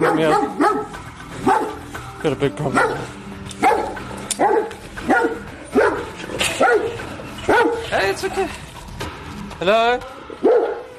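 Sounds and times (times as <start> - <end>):
angry dog barking: 0.0 - 1.8, 2.7 - 7.9, 10.4 - 10.9
speech: 0.1 - 0.6, 2.2 - 3.2, 8.1 - 8.6, 9.6 - 10.5.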